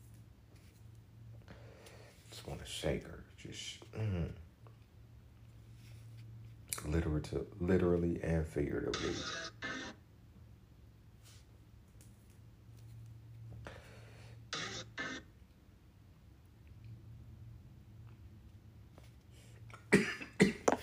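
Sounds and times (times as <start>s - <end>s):
low steady hum: 0.0s - 20.8s
speech: 2.4s - 4.4s, 6.9s - 9.5s
harsh coughs: 19.9s - 20.8s.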